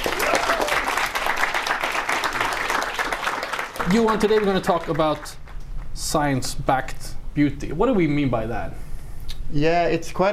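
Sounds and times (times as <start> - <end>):
audience applause: 0.0 - 5.6
speech: 3.9 - 5.4, 6.0 - 8.8, 9.5 - 10.3.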